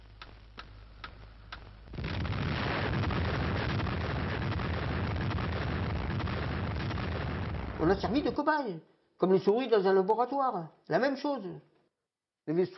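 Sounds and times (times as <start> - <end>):
sharp ticks: 0.1 - 1.8
first French atomic bomb test explosion with rumbling roar: 1.9 - 8.3
speech: 7.8 - 11.7, 12.5 - 12.7.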